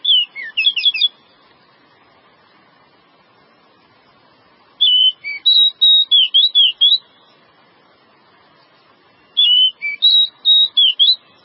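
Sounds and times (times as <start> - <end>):
Java sparrow song of clear slurred whistles and chips: 4.8 - 7.0, 9.2 - 11.4.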